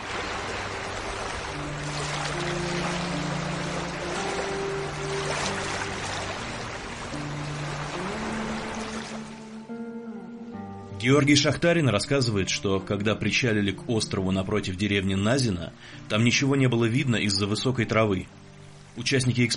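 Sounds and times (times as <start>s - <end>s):
continuous rush of spray and churning: 0.0s - 9.4s
river motorboat moving through water: 0.0s - 10.0s
speech: 11.0s - 18.4s, 19.0s - 19.5s.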